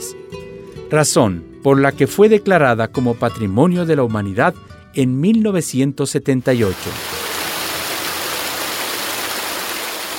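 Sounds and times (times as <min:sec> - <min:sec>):
speech: 0:00.1 - 0:07.2
rushing waterfall: 0:06.5 - 0:10.1.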